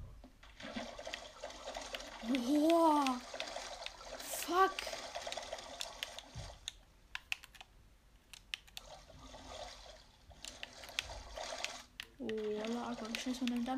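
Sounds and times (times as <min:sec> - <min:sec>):
video game water sloshing and trickling: 0:00.4 - 0:06.8, 0:08.8 - 0:13.7
video game sharp clicks and splashes: 0:00.4 - 0:13.7
speech: 0:02.2 - 0:03.3, 0:04.5 - 0:05.0.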